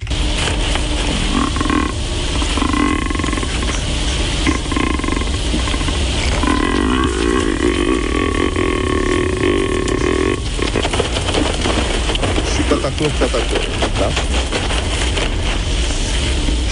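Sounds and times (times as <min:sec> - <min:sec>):
outdoor noise: 0:00.0 - 0:16.7
roe deer barking in a forest: 0:01.2 - 0:10.8.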